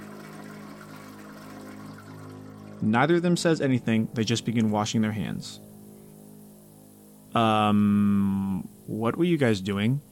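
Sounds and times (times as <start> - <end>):
two toilets flushing in neighbouring restroom stalls: 0.0 - 3.6
low humming drone: 0.0 - 10.0
speech: 2.8 - 5.7, 7.4 - 10.0.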